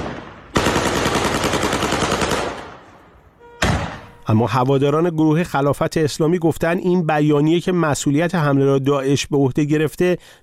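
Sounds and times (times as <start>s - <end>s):
automatic gunfire fired into the air in Izeh: 0.0s - 4.0s
speech: 4.3s - 10.4s.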